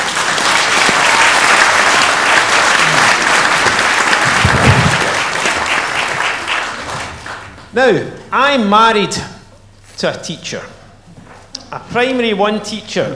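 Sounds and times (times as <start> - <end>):
audience applause: 0.0 - 7.7
speech: 7.8 - 9.3, 10.0 - 10.8, 11.7 - 13.1.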